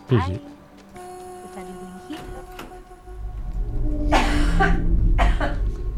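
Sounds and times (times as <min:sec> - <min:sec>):
speech: 0:00.1 - 0:00.6, 0:04.6 - 0:04.9
low steady hum: 0:01.0 - 0:05.9
harsh breathy coughs: 0:04.1 - 0:05.7.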